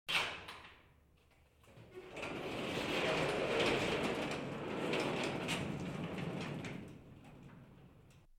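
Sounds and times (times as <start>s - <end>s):
garage door opened manually: 0.1s - 8.3s.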